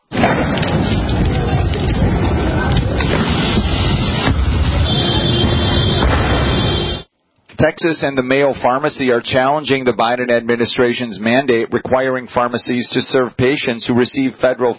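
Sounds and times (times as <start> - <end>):
sharp booming explosion blasts: 0.0 - 7.1
loud chaotic crowd noise during a street clash: 0.1 - 7.1
faint shouting voices: 4.7 - 7.0
speech: 7.6 - 14.7.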